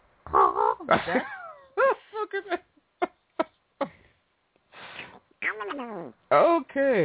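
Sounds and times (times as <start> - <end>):
person imitating bird squawky warbling calls: 0.2 - 0.9, 5.4 - 6.2
speech: 0.8 - 1.4, 2.3 - 2.7, 6.3 - 7.0.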